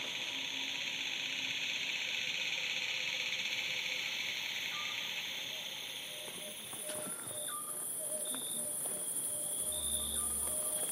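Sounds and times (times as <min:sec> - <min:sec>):
crickets stridulating: 0:00.0 - 0:10.9
faint chirps: 0:04.3 - 0:10.9.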